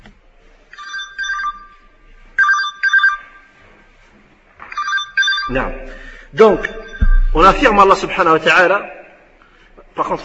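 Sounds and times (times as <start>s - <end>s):
mobile phone ringtone: 0.8s - 1.8s, 2.4s - 3.4s, 4.8s - 5.5s
speech: 5.5s - 9.0s, 10.0s - 10.2s.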